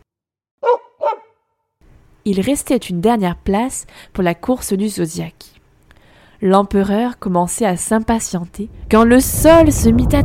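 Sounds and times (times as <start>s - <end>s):
dog barking: 0.6s - 1.4s
speech: 2.3s - 5.6s, 6.4s - 10.2s.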